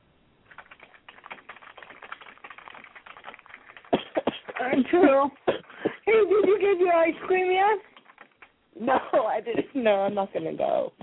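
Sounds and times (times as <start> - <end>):
woman's fingers typing on a keyboard: 0.5 - 5.9, 7.3 - 8.6
speech: 4.6 - 5.4, 6.1 - 7.9, 8.8 - 11.0.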